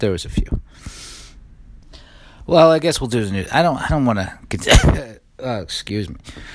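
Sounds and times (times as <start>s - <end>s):
speech: 0.0s - 0.9s, 2.5s - 6.5s
loud harsh cough: 4.6s - 5.2s.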